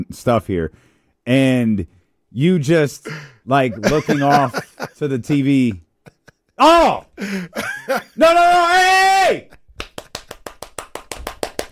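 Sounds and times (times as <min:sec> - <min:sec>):
speech: 0:00.0 - 0:05.8, 0:06.6 - 0:09.6
laughter: 0:03.6 - 0:06.6, 0:07.2 - 0:08.2
hands clapping: 0:09.6 - 0:11.7.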